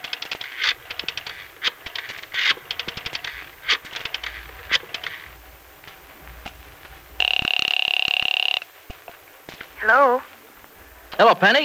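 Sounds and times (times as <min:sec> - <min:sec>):
clicks and rattling handling noises: 0:00.0 - 0:11.6
telephone ringing: 0:00.8 - 0:08.8
speech: 0:11.3 - 0:11.6.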